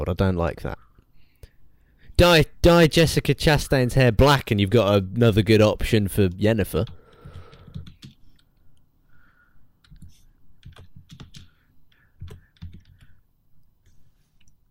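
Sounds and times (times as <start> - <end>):
speech: 0.0 - 0.8, 2.2 - 7.0
man typing on a computer keyboard while searching online: 6.8 - 8.6, 9.8 - 13.2.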